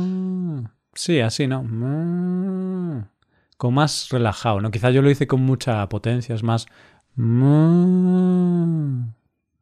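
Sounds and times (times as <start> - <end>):
person imitating a bull's moo: 0.0 - 0.7, 1.7 - 3.1, 7.2 - 9.2
speech: 1.0 - 9.2.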